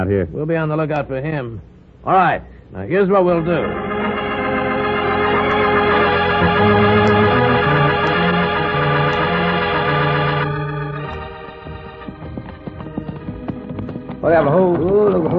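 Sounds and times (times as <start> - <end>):
speech: 0.0 - 3.9, 14.2 - 15.3
orchestral music: 3.3 - 14.7
horses' hooves clip-clopping: 11.2 - 15.3.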